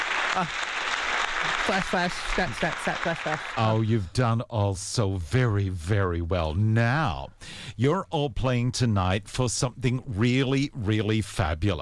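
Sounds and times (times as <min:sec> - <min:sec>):
audience applause for game contestants: 0:00.0 - 0:03.9
speech: 0:00.4 - 0:00.8, 0:01.4 - 0:11.8.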